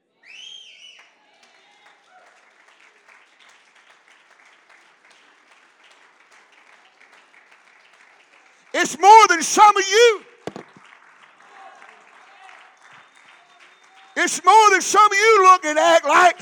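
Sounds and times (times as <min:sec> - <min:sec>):
man whistling loudly in a church: 0:00.2 - 0:01.1, 0:12.9 - 0:14.2
large crowd applauding in a church: 0:00.3 - 0:16.3
speech: 0:08.8 - 0:10.3, 0:14.3 - 0:16.3.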